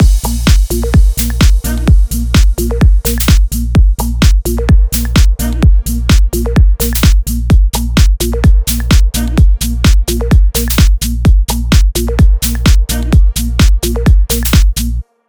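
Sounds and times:
128 BPM tech house mix: 0.0s - 15.0s.

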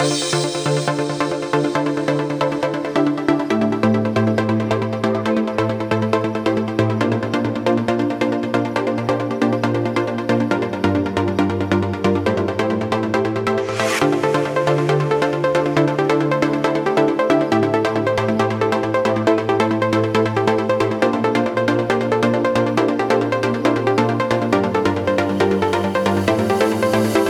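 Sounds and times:
music mix in D minor at 137 BPM: 0.0s - 27.2s.

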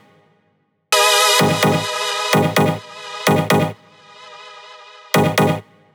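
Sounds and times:
synth melody loop in G sharp at 128 BPM: 0.9s - 5.5s.

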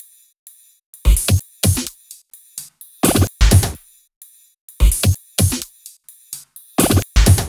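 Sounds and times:
128 BPM heavy duty drum kit beat: 1.0s - 3.9s, 4.8s - 7.4s.

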